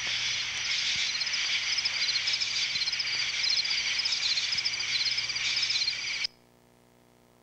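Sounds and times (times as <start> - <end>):
insect swarm chirring and buzzing: 0.0 - 6.3.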